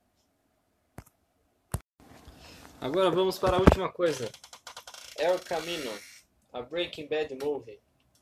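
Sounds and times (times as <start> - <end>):
speech: 2.8 - 4.4, 5.2 - 7.9
chair creaking as a speaker moves: 3.4 - 6.2.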